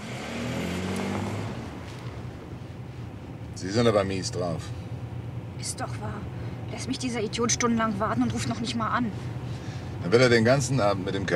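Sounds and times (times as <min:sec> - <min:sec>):
car engine accelerating away: 0:00.0 - 0:02.5
speech: 0:03.6 - 0:04.8, 0:05.6 - 0:11.3.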